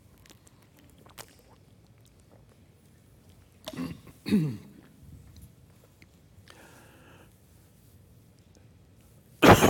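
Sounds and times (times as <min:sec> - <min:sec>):
preacher clearing his throat during a sermon: 0:03.7 - 0:04.8, 0:09.4 - 0:09.6
preacher coughing during a sermon: 0:03.7 - 0:04.8, 0:09.4 - 0:09.6.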